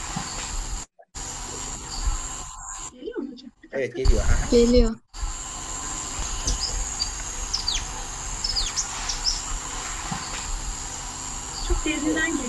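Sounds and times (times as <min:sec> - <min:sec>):
insect-like drone: 0:00.0 - 0:03.1, 0:04.1 - 0:12.4
small bird chirping faintly: 0:01.8 - 0:02.9, 0:05.8 - 0:10.5, 0:11.5 - 0:12.0
speech: 0:03.8 - 0:05.0.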